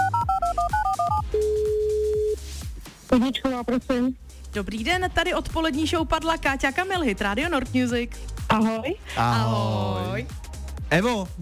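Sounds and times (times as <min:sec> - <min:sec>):
telephone keypad tones as a number is dialed for a prize call: 0:00.0 - 0:02.4
speech: 0:03.1 - 0:11.4.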